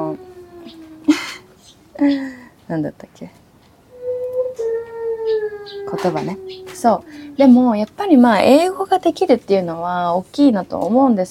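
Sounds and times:
child whimpering and wailing: 0.0s - 1.6s, 3.9s - 7.8s
speech: 2.0s - 3.4s, 5.9s - 11.2s.

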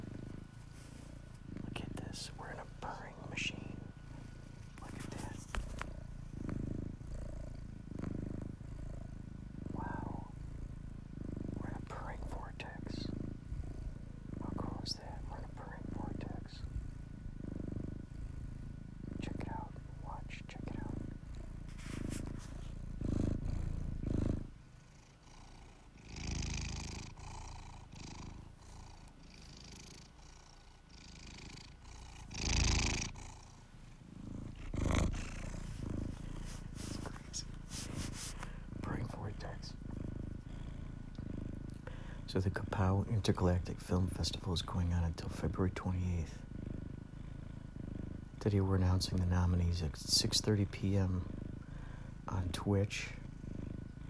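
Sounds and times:
cat purring: 0.0s - 54.0s
rustling: 21.4s - 23.0s, 34.4s - 38.7s
speech: 42.8s - 46.5s, 48.4s - 51.4s, 52.6s - 53.2s.

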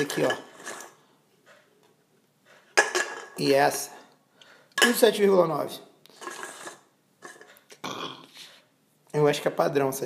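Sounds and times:
speech: 0.0s - 0.5s, 3.4s - 4.0s, 4.8s - 5.9s, 9.1s - 10.0s
person burping while drinking a canned gin and tonic: 7.7s - 8.4s.

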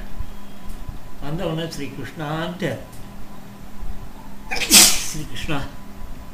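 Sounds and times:
low hum: 0.0s - 6.3s
speech: 1.3s - 3.0s, 4.7s - 5.8s
sneeze: 4.5s - 5.2s.

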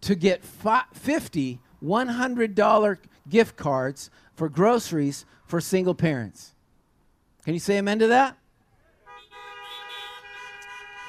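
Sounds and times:
speech: 0.0s - 6.5s, 7.4s - 8.4s
car horns honking: 9.0s - 11.0s.

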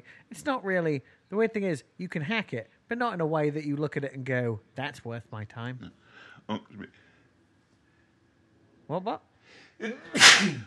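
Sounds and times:
speech: 0.1s - 7.0s, 8.9s - 10.6s
person sneezing: 9.8s - 10.6s.

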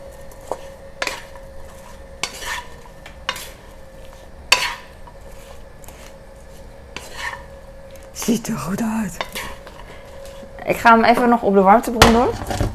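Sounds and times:
spoon stirring food in a large pan: 0.4s - 8.4s, 9.1s - 10.5s
speech: 8.2s - 9.4s, 10.7s - 12.6s.

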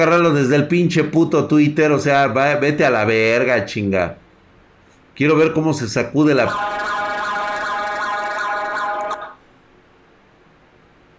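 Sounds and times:
speech: 0.0s - 4.2s, 5.2s - 6.9s
car alarm blaring with a harsh wavering tone: 6.4s - 9.4s.

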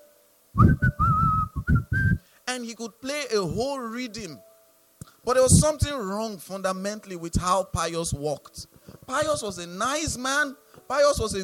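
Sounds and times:
speech: 0.6s - 1.0s, 2.6s - 4.5s, 5.2s - 11.4s
man whistling a loud bright tune: 0.6s - 2.2s.

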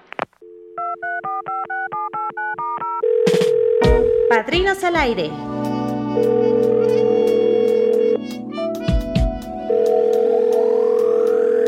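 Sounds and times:
telephone dial tone: 0.4s - 4.3s, 6.1s - 8.2s, 9.7s - 11.6s
speech: 4.5s - 6.8s.

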